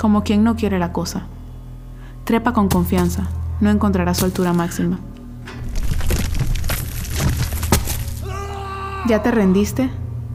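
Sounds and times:
speech: 0:00.0 - 0:01.4, 0:02.3 - 0:05.6, 0:09.1 - 0:10.0
low hum: 0:00.0 - 0:10.3
fragile wall being smashed and crumbling apart: 0:05.6 - 0:08.2.

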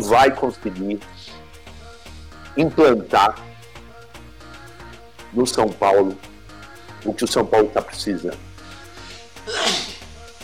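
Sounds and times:
speech: 0:00.0 - 0:01.4, 0:02.6 - 0:03.5, 0:05.3 - 0:06.3, 0:07.0 - 0:08.5
person sneezing: 0:09.4 - 0:10.1.

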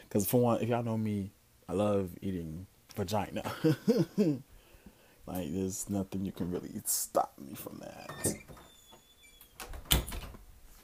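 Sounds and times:
speech: 0:00.1 - 0:04.5, 0:05.3 - 0:08.6
door swinging shut with a solid thump: 0:08.0 - 0:10.4
faint rattle of a door settling: 0:09.5 - 0:10.5.

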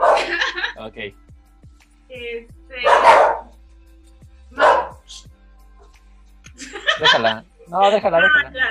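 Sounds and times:
small dog barking in the street: 0:00.0 - 0:00.4, 0:02.8 - 0:03.5, 0:04.6 - 0:05.1
laughter: 0:00.0 - 0:00.8, 0:06.6 - 0:08.0
speech: 0:00.8 - 0:01.3, 0:07.1 - 0:08.6.

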